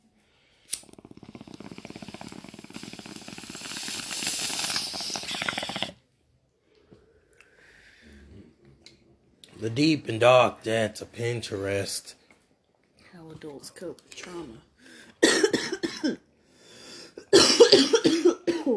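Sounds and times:
quiet breathing: 0:00.0 - 0:08.8, 0:14.7 - 0:15.2, 0:16.4 - 0:17.3
bong hit hissing inhale with faint bubbling: 0:00.6 - 0:06.0
speech: 0:09.6 - 0:12.2, 0:13.5 - 0:14.7, 0:16.0 - 0:16.2, 0:17.7 - 0:18.0.

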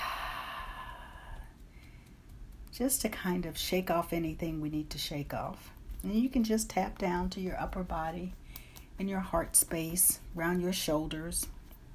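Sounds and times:
slow breath in through the nose and out through the mouth: 0:00.0 - 0:02.3
speech: 0:02.8 - 0:08.4, 0:09.0 - 0:11.6.

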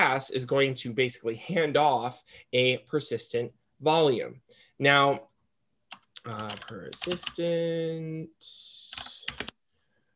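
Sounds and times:
speech: 0:00.2 - 0:05.3, 0:06.2 - 0:09.5
typing on a computer keyboard: 0:05.9 - 0:07.4, 0:08.9 - 0:09.6.

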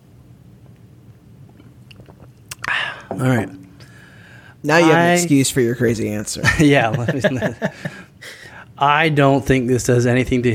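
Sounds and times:
person sipping a drink: 0:01.5 - 0:04.1
speech: 0:03.1 - 0:03.6, 0:04.6 - 0:10.5
laughter: 0:06.4 - 0:08.1.

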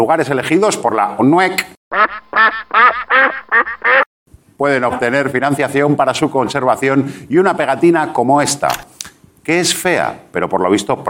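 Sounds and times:
speech: 0:00.0 - 0:04.0, 0:04.6 - 0:08.9, 0:09.5 - 0:11.0
duck quacking: 0:01.9 - 0:04.1.

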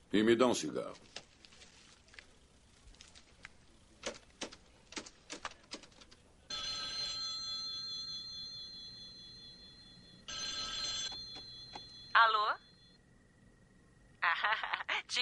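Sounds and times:
speech: 0:00.1 - 0:01.2
telephone ringing on an outgoing call: 0:06.5 - 0:13.0
laughter: 0:14.2 - 0:15.1.

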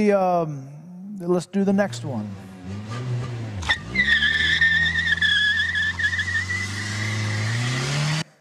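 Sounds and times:
speech: 0:00.0 - 0:03.1
low roaring car engine: 0:01.7 - 0:08.2
car tires screeching as a car leaves a parking lot: 0:01.8 - 0:08.2.

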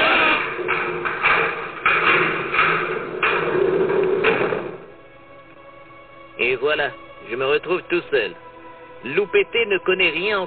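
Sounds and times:
door shut with dull thuds and knocks: 0:00.0 - 0:05.0
speech: 0:06.7 - 0:08.4, 0:09.0 - 0:10.4.

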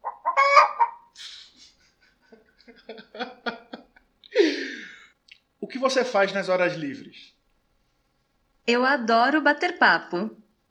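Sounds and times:
chicken clucking in short choppy bursts: 0:00.0 - 0:01.8
laughter: 0:01.2 - 0:05.1
speech: 0:05.8 - 0:07.2, 0:08.7 - 0:10.4.

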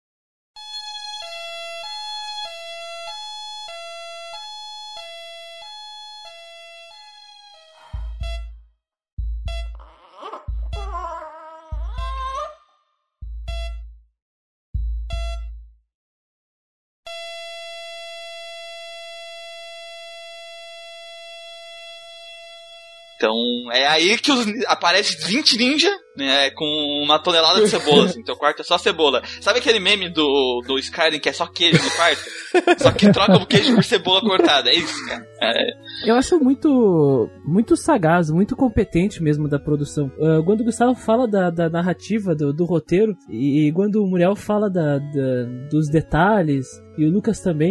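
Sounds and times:
two-tone ambulance siren: 0:00.6 - 0:08.5, 0:17.1 - 0:23.3
heavy low thumps: 0:09.2 - 0:12.4, 0:13.2 - 0:14.0, 0:14.8 - 0:15.8
speech: 0:23.2 - 0:47.6
laughter: 0:27.4 - 0:28.4, 0:31.6 - 0:36.1.

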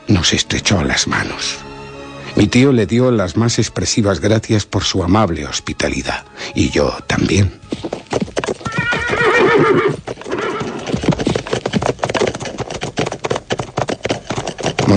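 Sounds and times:
speech: 0:00.1 - 0:01.7, 0:02.4 - 0:08.0, 0:09.6 - 0:10.0
horse hooves clip-clopping: 0:06.6 - 0:14.9
horse whinnying: 0:08.2 - 0:14.9.

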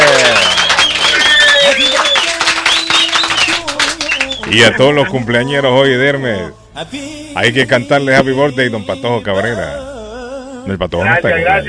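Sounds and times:
crowd voices and calls: 0:00.0 - 0:02.4
crowd clapping and applauding: 0:00.0 - 0:04.8
speech: 0:04.5 - 0:09.9, 0:10.6 - 0:11.6.

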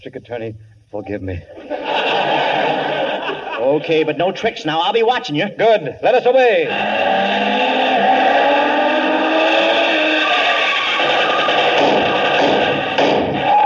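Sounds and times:
speech: 0:00.0 - 0:07.1
laughter: 0:01.4 - 0:04.2, 0:06.6 - 0:13.5
car engine droning while speeding along: 0:06.6 - 0:13.0
dull thumps: 0:11.0 - 0:13.4.

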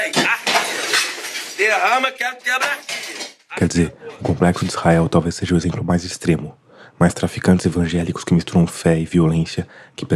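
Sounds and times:
religious objects smashed and shattered on a hard floor: 0:00.0 - 0:02.0, 0:02.6 - 0:03.5
raised voice speaking: 0:01.6 - 0:10.1
speech: 0:01.6 - 0:10.1.

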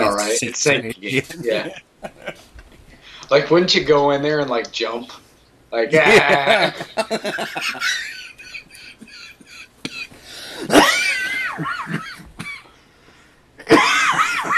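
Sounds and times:
person laughing: 0:00.0 - 0:02.5, 0:05.9 - 0:10.1, 0:10.7 - 0:12.2
speech: 0:00.4 - 0:02.5, 0:03.3 - 0:08.2
harsh coughing: 0:08.8 - 0:12.7, 0:13.6 - 0:14.5.

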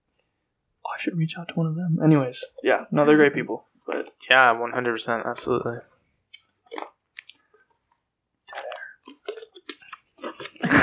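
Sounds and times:
speech: 0:01.0 - 0:05.9
people sipping water: 0:06.3 - 0:07.8, 0:08.4 - 0:10.8
swallowing: 0:06.3 - 0:07.8, 0:08.4 - 0:10.8
soft mouth clicks: 0:08.5 - 0:10.6.

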